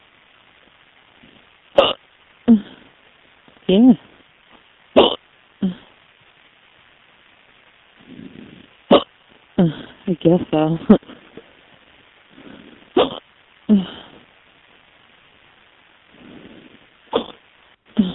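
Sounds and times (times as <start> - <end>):
person hiccuping with short voiced squeaks: 1.8 - 2.8, 5.0 - 5.9, 8.9 - 9.9, 13.0 - 14.0, 17.1 - 17.4
speech: 3.7 - 4.1, 9.6 - 11.0.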